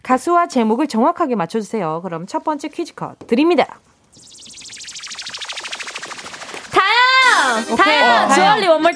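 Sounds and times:
speech: 0.1s - 3.8s, 7.6s - 8.9s
fast train of buzzy clicking synth pulses: 4.1s - 8.5s
spacey electronic synth intro of a pop song: 4.2s - 8.4s.

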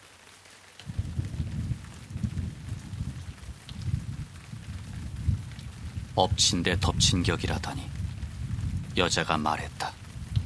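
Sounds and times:
steady rain-like hiss: 0.0s - 10.4s
low rumbling thunder: 0.8s - 10.4s
speech: 6.2s - 8.0s, 9.0s - 10.0s.

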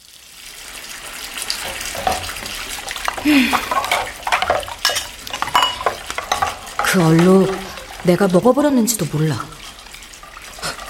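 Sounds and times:
running tap water splashing into a sink: 1.2s - 10.8s
clinks and scraping strokes: 1.7s - 8.0s
rice bowl being scrubbed and rinsed: 3.0s - 10.8s
speech: 3.2s - 3.8s, 6.9s - 9.6s.

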